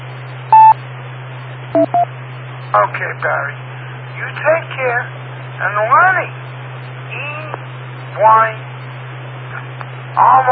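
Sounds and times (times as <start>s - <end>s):
steady low electrical hum: 0.0s - 10.5s
telephone keypad dialing tones: 0.6s - 0.8s, 1.8s - 2.1s
speech: 2.8s - 3.6s, 4.2s - 6.5s, 8.2s - 8.6s, 10.1s - 10.5s.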